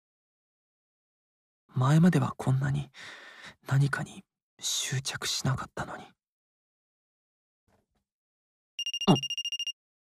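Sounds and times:
speech: 1.8 - 6.2, 9.1 - 9.4
telephone ringing: 8.8 - 9.8.

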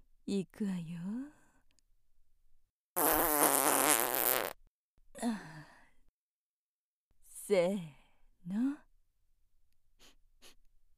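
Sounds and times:
speech: 0.3 - 1.2, 7.5 - 8.8
loud fart with a buzzing fluttering texture: 3.0 - 4.6.

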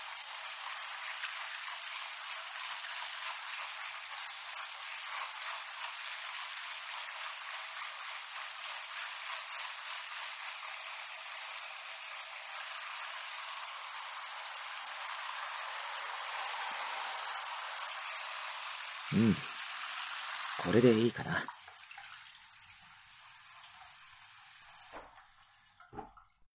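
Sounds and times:
shower water spraying and rinsing hair: 0.0 - 25.8
speech: 19.1 - 19.5, 20.6 - 21.6.

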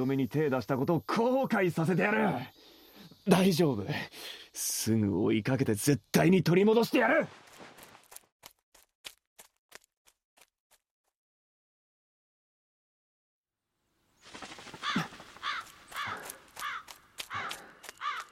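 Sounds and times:
speech: 0.0 - 7.4
busy rustling background: 14.2 - 18.2
crow cawing: 14.6 - 18.3
sharp taps: 16.0 - 18.3.

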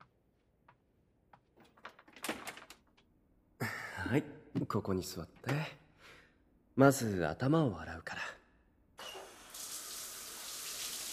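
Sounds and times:
speech: 4.1 - 5.8, 6.8 - 8.2
shower water spraying: 9.2 - 11.1.

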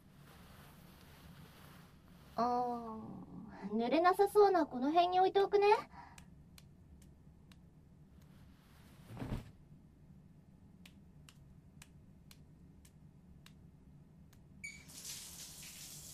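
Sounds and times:
speech: 2.4 - 6.0
dull thump: 9.1 - 9.5
shower water spraying: 14.6 - 16.1.

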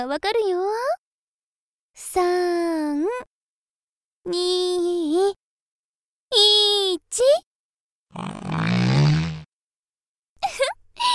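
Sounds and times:
speech: 0.0 - 1.0, 2.0 - 3.3, 4.2 - 5.4, 6.4 - 7.5
drawn-out low buzzing fart: 8.1 - 9.5.

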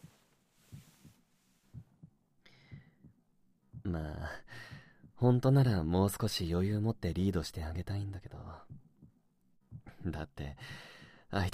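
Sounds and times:
heartbeat thumping: 0.0 - 5.4, 8.5 - 10.1
speech: 3.9 - 4.6, 5.2 - 8.8, 10.0 - 11.5.

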